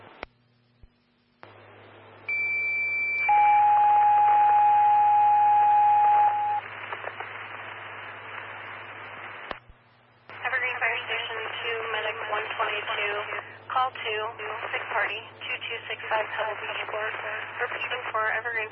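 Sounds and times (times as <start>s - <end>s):
faint radio hiss: 0.0s - 2.4s, 4.4s - 18.7s
fire dispatch alert tones: 2.3s - 6.6s.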